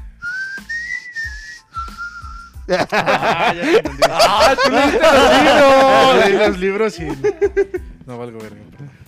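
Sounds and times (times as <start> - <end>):
person whistling a short tune: 0.2 - 2.7
laughter: 2.7 - 7.8
speech: 2.7 - 9.0.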